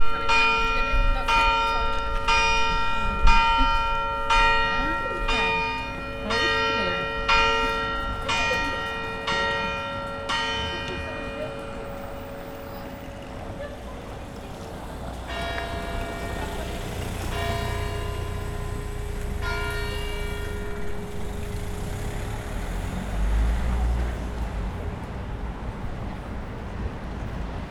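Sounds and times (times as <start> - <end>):
bell ringing: 0.0 - 13.6, 15.3 - 22.9
motor vehicle: 0.0 - 27.6.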